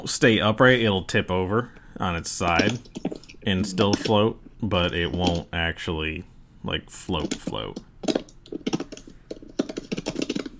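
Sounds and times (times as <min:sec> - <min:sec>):
speech: 0:00.0 - 0:08.2
rapid typing on a computer keyboard: 0:02.6 - 0:04.2, 0:04.9 - 0:05.5, 0:07.1 - 0:10.5.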